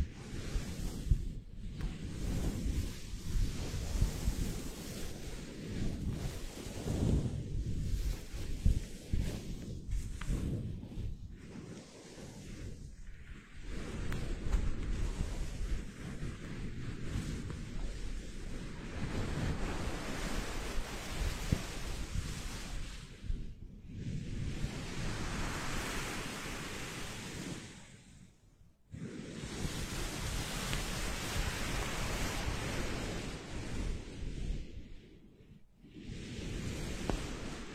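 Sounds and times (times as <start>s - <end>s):
foam microphone windscreen rubbed and squeezed against the mic: 0.0s - 28.2s, 28.9s - 35.2s, 35.8s - 37.7s.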